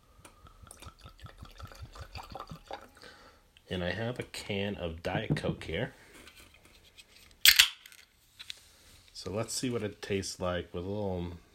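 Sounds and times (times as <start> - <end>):
blackened whiskey glugging from a bottle into a glass: 0.4 - 3.0
speech: 3.7 - 6.0, 9.2 - 11.5.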